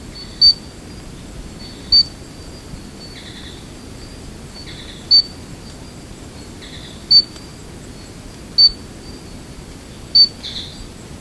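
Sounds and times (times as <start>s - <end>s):
steady low background hiss: 0.0s - 11.1s
Stumpffia gimmeli giving short high-pitched peeping notes: 0.1s - 0.7s, 1.6s - 2.2s, 4.6s - 5.4s, 6.6s - 7.4s, 8.6s - 8.8s, 10.1s - 10.8s.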